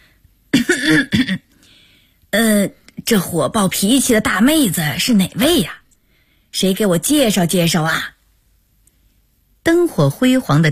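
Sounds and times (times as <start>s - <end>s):
elderly woman coughing with a throat-clearing quality: 0.5s - 1.5s
speech: 0.7s - 1.5s, 2.3s - 5.8s, 6.5s - 8.2s, 9.6s - 10.7s.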